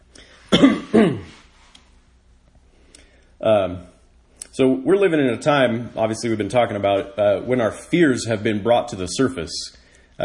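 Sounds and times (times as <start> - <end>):
raspy throat-clearing coughs from pollen and sawdust: 0.5 - 1.4
speech: 0.9 - 1.2, 4.6 - 10.2.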